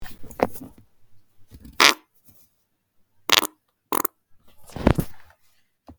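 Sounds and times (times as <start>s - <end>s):
nasty fart: 1.8s - 2.0s, 3.3s - 4.1s.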